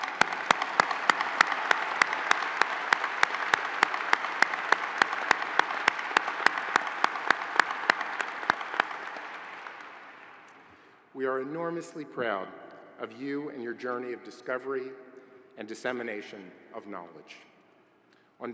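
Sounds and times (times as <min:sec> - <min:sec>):
audience clapping at a university faculty ceremony: 0:00.0 - 0:10.8
speech: 0:11.2 - 0:15.0, 0:15.6 - 0:17.5.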